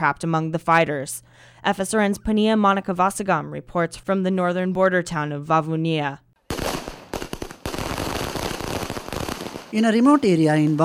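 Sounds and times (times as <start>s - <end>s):
speech: 0.0s - 6.2s, 9.7s - 10.8s
string of firecrackers exploding in celebration: 6.5s - 10.8s.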